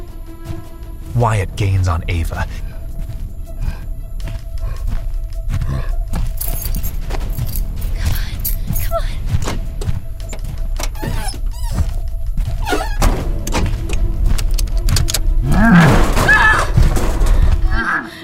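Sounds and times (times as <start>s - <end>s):
constant low rumble: 0.0s - 17.8s
speech: 1.2s - 2.7s
scuffing: 2.6s - 15.0s
set of keys dropping to the ground by a pickup truck: 6.2s - 8.9s.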